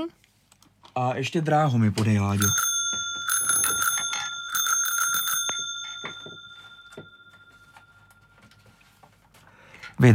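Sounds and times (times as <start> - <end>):
speech: 1.0 - 2.7, 10.0 - 10.1
bicycle bell ringing: 2.4 - 8.4.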